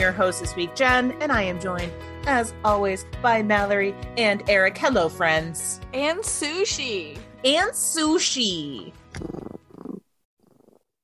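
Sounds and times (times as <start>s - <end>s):
speech: 0.0s - 9.4s
cat purring: 9.1s - 10.9s.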